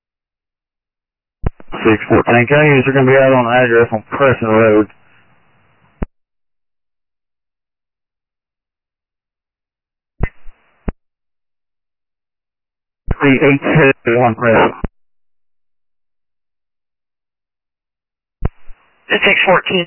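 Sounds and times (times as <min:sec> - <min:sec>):
two-way radio crackling with short bursts of noise: 0:01.5 - 0:04.9, 0:13.1 - 0:14.9, 0:19.1 - 0:19.8
speech: 0:01.8 - 0:05.0, 0:13.2 - 0:14.9, 0:19.1 - 0:19.8.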